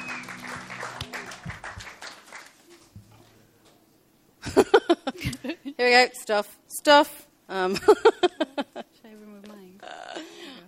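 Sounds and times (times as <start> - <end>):
audience applause for a band: 0.0 - 2.9
speech: 4.5 - 4.8, 5.8 - 8.3.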